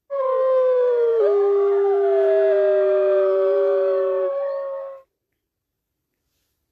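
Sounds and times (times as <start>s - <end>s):
wolf howling: 0.1s - 5.0s.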